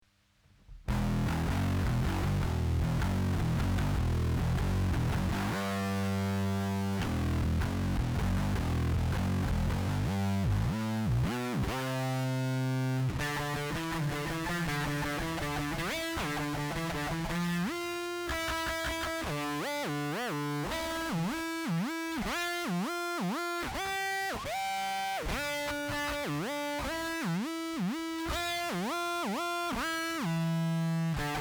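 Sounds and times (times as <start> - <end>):
distorted guitar with whammy effect: 0.8 - 31.4.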